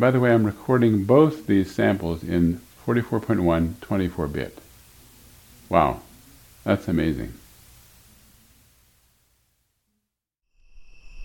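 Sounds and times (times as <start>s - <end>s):
speech: 0.0s - 4.6s, 5.7s - 7.4s
broadband hiss: 0.0s - 9.8s
night crickets chirping outdoors: 10.5s - 11.2s.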